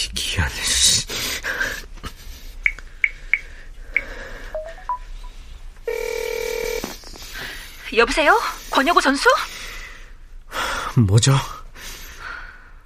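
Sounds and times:
speech: 0.0 - 0.7, 8.0 - 9.6, 11.0 - 11.6
phone keypad tones: 2.6 - 5.0
steady electronic telephone ringing tone: 4.6 - 5.2, 5.9 - 6.8.

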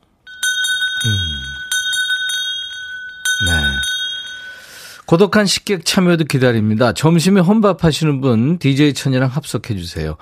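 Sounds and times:
bright bell ringing: 0.3 - 4.8
speech: 1.0 - 1.5, 5.1 - 10.2.

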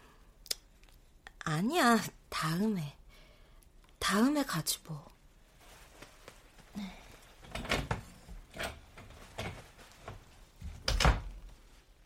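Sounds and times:
speech: 1.5 - 3.0, 4.1 - 5.1, 6.8 - 7.0
room door handled with soft wooden knocks and rattles: 10.7 - 11.4.

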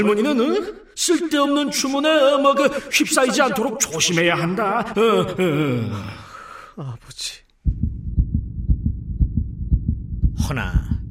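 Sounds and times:
speech: 0.0 - 6.2, 6.8 - 7.4, 10.5 - 10.8
fast heartbeat thumping: 7.6 - 11.0.

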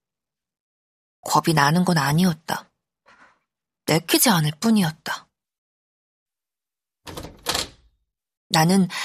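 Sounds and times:
speech: 1.2 - 2.7, 3.9 - 5.2, 8.5 - 9.0
bedroom door latch click: 7.1 - 7.9.

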